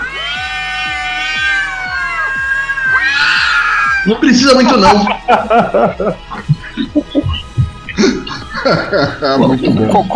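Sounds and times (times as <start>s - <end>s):
cat screeching in caterwauling yowls: 0.0s - 4.1s
speech: 4.0s - 7.4s, 8.6s - 10.1s
laughter: 4.1s - 10.1s.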